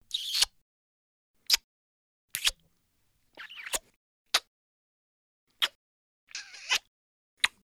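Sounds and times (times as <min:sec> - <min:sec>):
short cartoon kiss: 0:00.1 - 0:00.6, 0:02.4 - 0:02.6, 0:03.4 - 0:04.5, 0:05.6 - 0:07.6.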